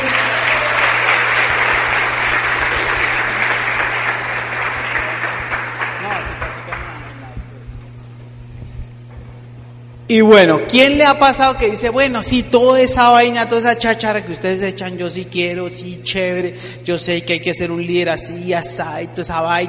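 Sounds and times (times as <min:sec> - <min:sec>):
room full of people applauding loudly: 0:00.0 - 0:07.4
steady low hum: 0:00.0 - 0:16.6
speech: 0:10.1 - 0:19.6.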